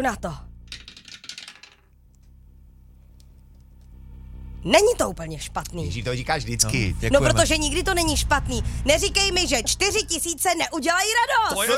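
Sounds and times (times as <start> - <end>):
speech: 0.0 - 0.5, 4.6 - 11.7
low hum: 0.0 - 11.7
game die rattling and clattering in a prize game: 0.7 - 1.9.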